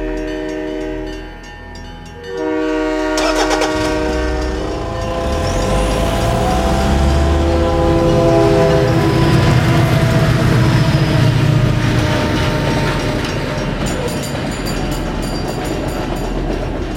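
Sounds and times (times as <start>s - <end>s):
train horn blaring: 0.0s - 1.5s, 2.2s - 13.8s
approaching train rumbling and rolling by: 0.0s - 16.9s
train wheels rattling and clattering: 2.3s - 16.9s.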